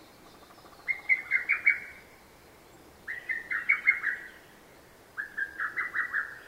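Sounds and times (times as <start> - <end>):
faint background hiss: 0.0 - 6.4
lesser cuckoo calling: 0.6 - 2.0, 3.1 - 4.4, 5.2 - 6.4.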